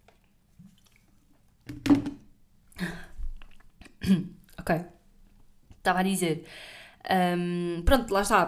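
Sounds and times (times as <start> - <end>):
person sipping water: 0.2 - 1.4, 3.2 - 4.6
swallowing gulps: 2.8 - 4.0
speech: 4.1 - 4.9, 5.8 - 8.4.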